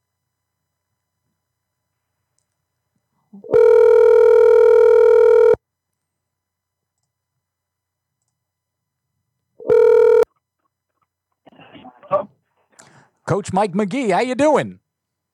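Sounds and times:
electronic phone tones of a call being placed: 3.4 - 5.6, 9.6 - 10.3
speech: 13.3 - 14.8.

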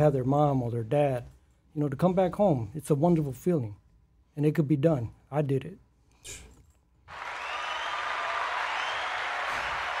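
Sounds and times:
speech: 0.0 - 3.8, 4.4 - 6.5
canned crowd applause sound effect: 7.1 - 9.9.

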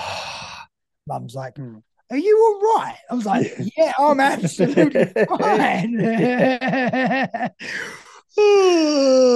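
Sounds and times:
speech: 1.1 - 9.3
laughter: 3.3 - 7.6
person yawning with big breaths and groaning exhale: 7.8 - 9.3.

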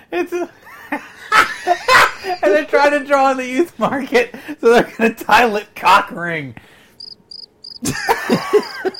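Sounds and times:
speech: 0.1 - 6.8, 7.8 - 8.9
laughter: 0.6 - 2.7, 7.8 - 8.9
high-pitched crickets chirping: 7.0 - 8.9.

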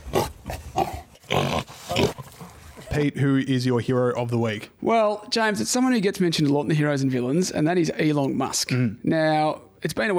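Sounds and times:
pig snorting and grunting: 0.0 - 2.9
speech: 3.0 - 10.1.

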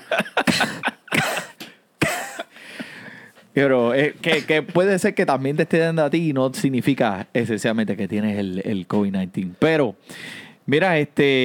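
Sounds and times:
dry hacking cough: 0.0 - 2.6
speech: 3.6 - 11.4.

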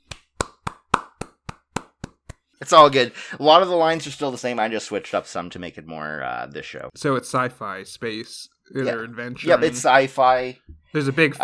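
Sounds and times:
sharp hand claps: 0.0 - 2.5
speech: 2.6 - 11.4.

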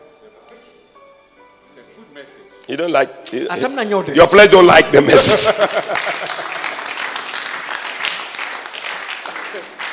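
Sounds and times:
speech: 2.2 - 6.6, 9.6 - 9.8
laughter: 5.0 - 6.9
crowd clapping: 5.2 - 9.9.

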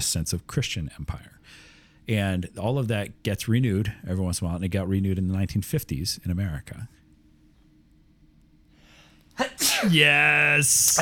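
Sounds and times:
speech: 0.0 - 7.0, 9.4 - 11.0
sharp inhale: 8.7 - 9.2
loud explosive sneeze: 9.4 - 10.4.

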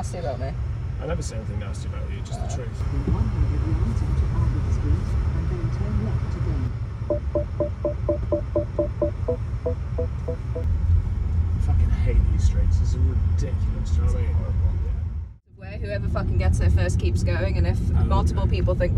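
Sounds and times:
BMW car interior engine rumble while driving: 0.0 - 18.9
speech: 0.1 - 7.4, 15.6 - 18.9
voices: 1.0 - 6.7, 11.6 - 18.9.

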